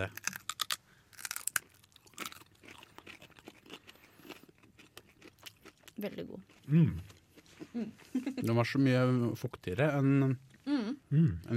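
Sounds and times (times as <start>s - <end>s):
speech: 0.0s - 0.2s, 6.0s - 7.1s, 7.7s - 11.5s
crunchy bites of raw parsnip being chewed: 0.0s - 8.2s.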